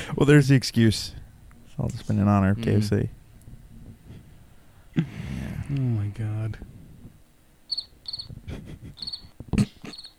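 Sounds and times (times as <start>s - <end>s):
speech: 0.2s - 1.2s, 1.8s - 3.2s, 5.7s - 6.7s
crickets chirping: 7.7s - 8.3s, 9.0s - 9.3s, 9.9s - 10.1s.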